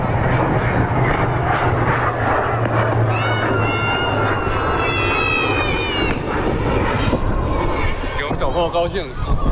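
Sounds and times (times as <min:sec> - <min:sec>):
KJ-500 airborne early warning aircraft engines roaring while taxiing for takeoff: 0:00.0 - 0:09.4
high wavering aircraft engine whine: 0:00.0 - 0:09.4
speech: 0:08.8 - 0:09.4.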